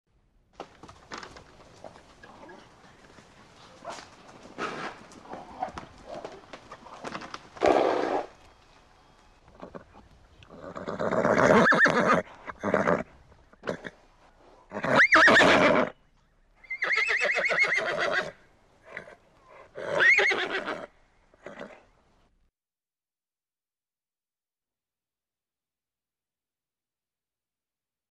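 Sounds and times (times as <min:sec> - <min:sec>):
horse neighing up close: 0:09.6 - 0:14.0, 0:14.7 - 0:15.9, 0:16.6 - 0:21.8.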